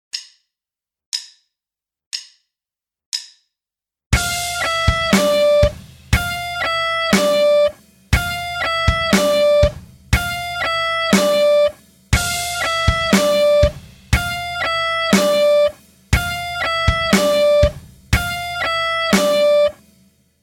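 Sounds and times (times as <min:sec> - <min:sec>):
guitar alternate picking: 0:04.2 - 0:19.8.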